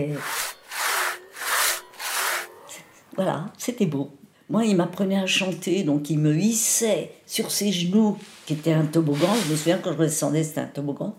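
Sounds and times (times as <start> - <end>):
speech: 0.0 - 0.4, 3.2 - 11.1
band saw cutting through wood in rasping strokes: 0.0 - 2.5.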